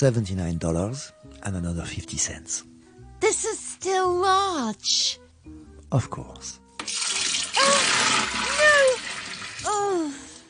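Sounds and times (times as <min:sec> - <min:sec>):
speech: 0:00.0 - 0:07.0
liquid poured steadily into a cup: 0:06.8 - 0:09.8.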